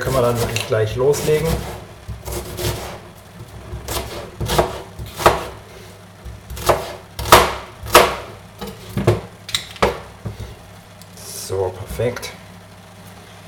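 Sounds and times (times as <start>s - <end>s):
speech: 0.0s - 1.8s
knife dicing an onion on a wooden cutting board: 0.0s - 5.6s, 6.2s - 10.5s.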